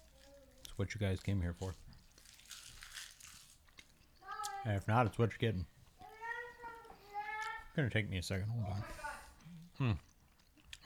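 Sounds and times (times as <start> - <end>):
crunchy snack being chewed: 0.0 - 4.6, 9.3 - 10.8
speech: 0.8 - 1.9, 4.6 - 5.7, 7.8 - 9.0, 9.8 - 10.1.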